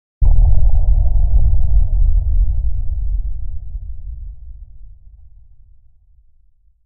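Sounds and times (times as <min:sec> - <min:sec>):
sci-fi or underwater explosion: 0:00.2 - 0:06.3.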